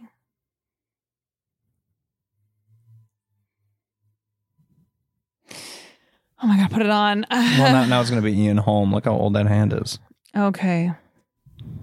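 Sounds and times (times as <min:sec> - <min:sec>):
person breathing near the microphone: 0:05.5 - 0:06.4, 0:11.5 - 0:11.8
speech: 0:06.4 - 0:11.0
laughter: 0:07.3 - 0:08.4.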